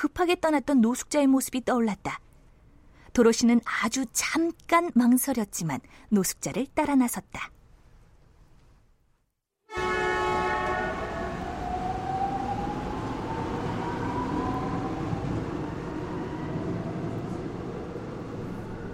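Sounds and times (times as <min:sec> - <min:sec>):
speech: 0:00.1 - 0:02.3, 0:03.1 - 0:07.6
subway train horn blaring: 0:09.7 - 0:14.7
passing rail train rumbling: 0:09.8 - 0:18.9.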